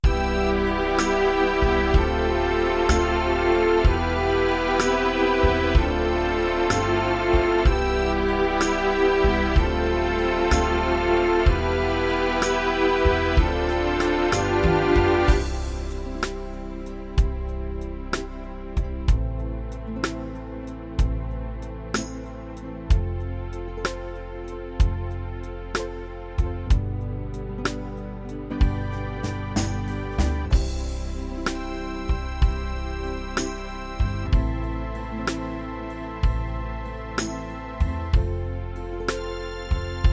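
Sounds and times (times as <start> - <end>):
128 ballad music: 0.0 - 40.1.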